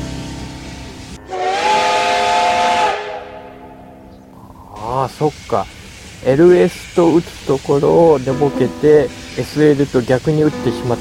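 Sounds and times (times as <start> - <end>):
steam hissing: 0.0 - 3.2, 4.7 - 11.0
steam locomotive whistle: 1.2 - 3.6
speech: 5.1 - 11.0.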